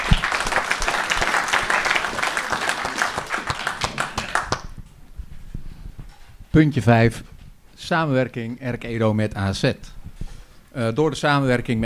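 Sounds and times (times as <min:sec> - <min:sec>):
crowd applauding: 0:00.0 - 0:04.8
speech: 0:06.6 - 0:10.0, 0:10.8 - 0:11.8.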